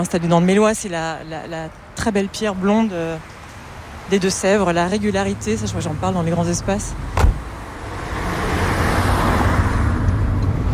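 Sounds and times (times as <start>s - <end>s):
speech: 0.0s - 3.4s, 4.1s - 7.4s
car road noise: 0.0s - 10.7s.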